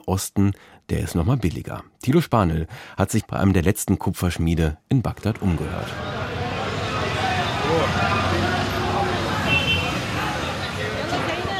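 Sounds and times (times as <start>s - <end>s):
speech: 0.0s - 6.4s
busy main street traffic rumbling in the old town of Baghdad: 5.2s - 11.5s
dense crowd murmur of indistinct voices at market stalls: 5.5s - 11.5s
car horn: 5.8s - 11.5s.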